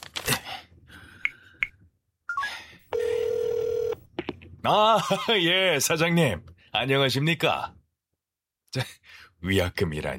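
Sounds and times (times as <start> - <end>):
longer steady telephone line tone: 2.9 - 4.1
speech: 4.6 - 7.8, 8.7 - 10.1.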